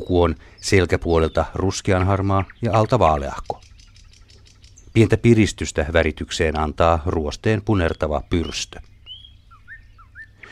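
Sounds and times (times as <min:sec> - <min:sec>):
speech: 0:00.0 - 0:03.6, 0:05.0 - 0:08.9
Thrush nightingale singing whistle and slurred notes: 0:00.0 - 0:10.5.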